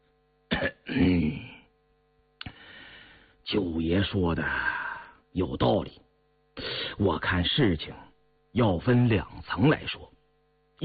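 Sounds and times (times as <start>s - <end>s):
light cough with rough throat-clearing: 0.5s - 1.4s
speech: 0.6s - 1.4s, 3.5s - 6.0s, 6.6s - 10.2s.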